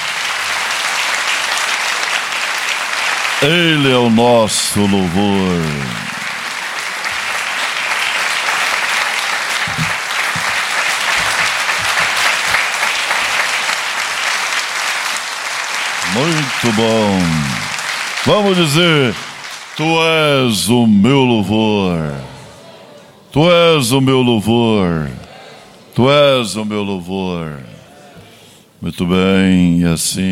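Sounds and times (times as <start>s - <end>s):
large congregation applauding: 0.0s - 22.7s
speech: 3.4s - 6.1s, 16.2s - 22.4s, 23.4s - 25.2s, 26.0s - 27.7s, 28.8s - 30.3s.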